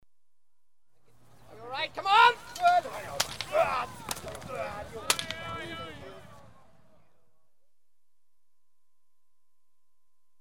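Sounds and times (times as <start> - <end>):
equestrian horse race starting: 1.2 - 7.3.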